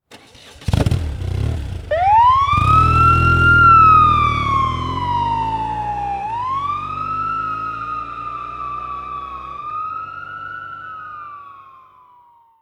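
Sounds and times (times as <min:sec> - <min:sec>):
police motorcycle pulling away: 0:00.1 - 0:11.9.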